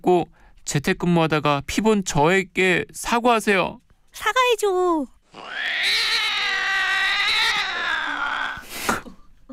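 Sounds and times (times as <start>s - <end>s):
speech: 0.0s - 6.2s
cat crying plaintively: 5.3s - 8.7s.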